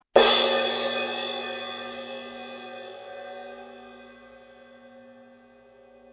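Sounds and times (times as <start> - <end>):
medium 16-inch crash cymbal hit: 0.2 - 4.9.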